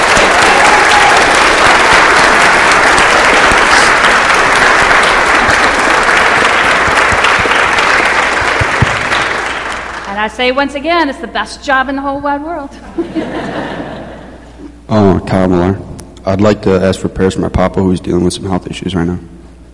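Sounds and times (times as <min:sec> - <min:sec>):
large audience applause: 0:00.0 - 0:10.1
speech: 0:10.2 - 0:13.2, 0:14.9 - 0:19.3
laughter: 0:12.8 - 0:14.8.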